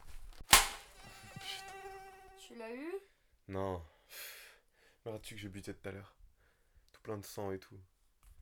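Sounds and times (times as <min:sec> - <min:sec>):
fly swatter swat: 0:00.5 - 0:01.9
mosquito whining: 0:00.9 - 0:02.7
speech: 0:02.6 - 0:04.3, 0:05.1 - 0:06.2, 0:07.0 - 0:07.9.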